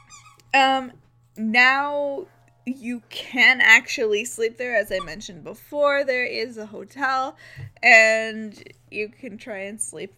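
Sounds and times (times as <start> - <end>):
dog toy squeaking: 0.0 - 0.6, 4.9 - 5.2
low steady hum: 0.0 - 10.1
speech: 0.5 - 10.1.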